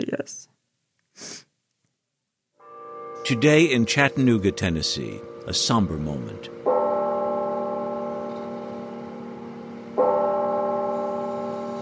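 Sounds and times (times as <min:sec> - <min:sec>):
speech: 0:00.2 - 0:00.5, 0:03.3 - 0:06.6
deep church bell tolling in Chattanooga Tennessee: 0:02.6 - 0:11.8.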